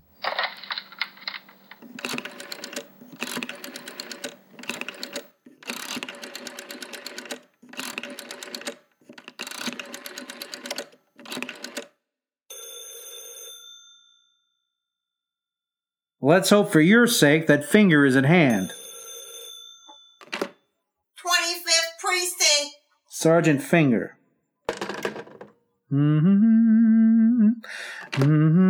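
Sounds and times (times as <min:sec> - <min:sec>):
single steady tonal telephone ring on the line: 0:00.0 - 0:11.9, 0:12.5 - 0:14.0, 0:18.4 - 0:20.6, 0:21.2 - 0:22.7
rotary telephone dial whirring and clicking: 0:00.2 - 0:11.9
speech: 0:16.3 - 0:18.8, 0:23.2 - 0:24.2, 0:25.9 - 0:28.6.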